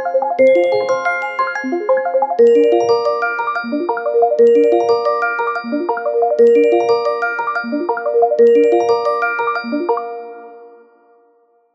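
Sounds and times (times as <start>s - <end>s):
arpeggiated sixteenth-note triplets: 0.1s - 10.8s.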